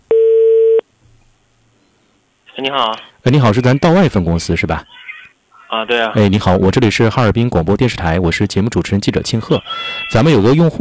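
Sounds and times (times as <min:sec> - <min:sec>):
telephone call tone beep while dialing a number: 0:00.1 - 0:00.8
speech: 0:02.6 - 0:05.0, 0:05.7 - 0:10.7.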